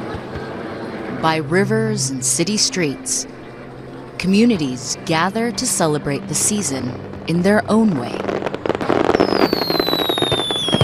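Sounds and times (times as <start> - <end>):
speech: 1.2 - 3.4, 4.2 - 8.5
fireworks exploding at a summer fireworks festival in Tokyo: 6.3 - 10.8
thin high firework whistle falling in pitch: 9.1 - 10.8.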